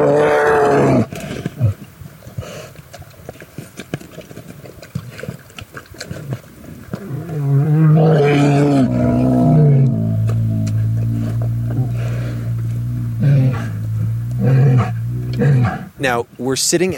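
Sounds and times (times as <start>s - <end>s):
grizzly bear roaring at a road-killed bison carcass in Yellowstone: 0.0s - 1.1s, 7.0s - 16.0s
speech: 16.5s - 16.9s.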